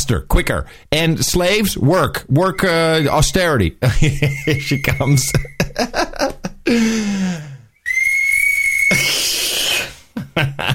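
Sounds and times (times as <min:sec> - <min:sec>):
speech: 0:00.1 - 0:07.4
laughter: 0:03.8 - 0:07.0, 0:10.2 - 0:10.7
handheld whistle shrill blast: 0:04.4 - 0:05.5, 0:07.8 - 0:09.4
squealing wavering sounds: 0:04.4 - 0:05.5, 0:07.8 - 0:09.9.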